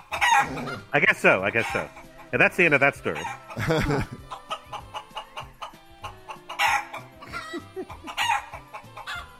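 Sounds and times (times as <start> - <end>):
rooster crowing loud and strained: 0.0 - 0.9, 6.5 - 9.3
several chickens clucking: 0.0 - 9.3
speech: 0.4 - 4.2
laughter: 3.2 - 4.7, 7.2 - 8.3.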